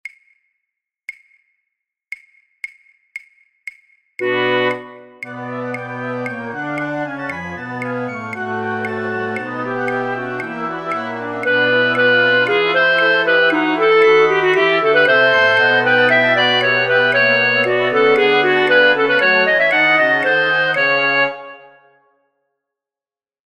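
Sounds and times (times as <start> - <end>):
flute orchestra playing for practice tracks: 4.2 - 21.8.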